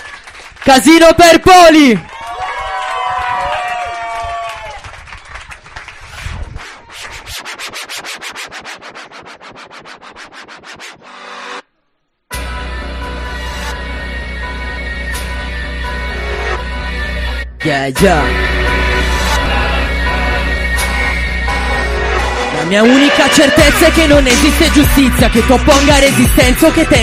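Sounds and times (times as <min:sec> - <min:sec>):
live crowd clapping and cheering: 0:00.0 - 0:08.9, 0:21.8 - 0:26.4
speech: 0:00.7 - 0:02.1, 0:17.7 - 0:18.5, 0:22.7 - 0:27.0
music with a heavy beat: 0:06.8 - 0:11.5, 0:18.2 - 0:27.0.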